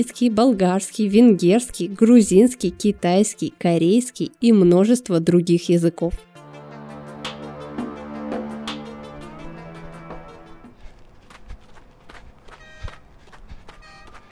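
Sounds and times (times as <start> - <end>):
speech: 0.0 - 6.3
sustained musical tones: 6.4 - 10.8
footsteps crunching and creaking on snow: 10.7 - 14.3.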